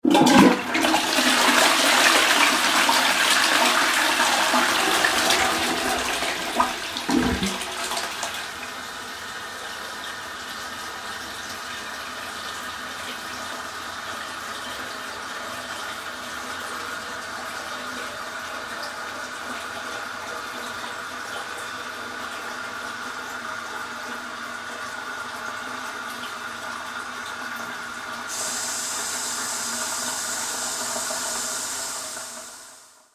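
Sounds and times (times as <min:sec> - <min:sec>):
toilet cistern filling back up with water: 0:00.0 - 0:33.0
household toilet flushing in a bathroom: 0:00.0 - 0:33.1.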